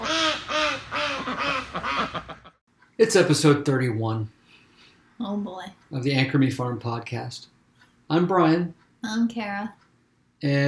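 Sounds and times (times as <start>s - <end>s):
chickens squawking: 0.0s - 2.6s
speech: 3.0s - 4.4s, 5.2s - 7.5s, 8.1s - 9.8s, 10.4s - 10.6s.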